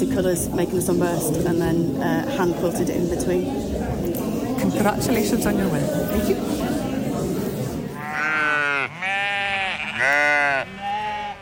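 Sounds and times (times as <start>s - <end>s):
murmuring noise: 0.0s - 11.4s
speech: 0.1s - 6.9s
sheep bleating in show pens: 8.0s - 11.4s.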